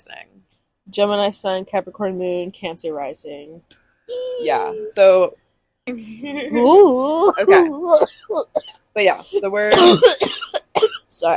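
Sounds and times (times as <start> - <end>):
speech: 0.0 - 11.3
person coughing in harsh bursts: 7.3 - 8.8, 9.7 - 11.1.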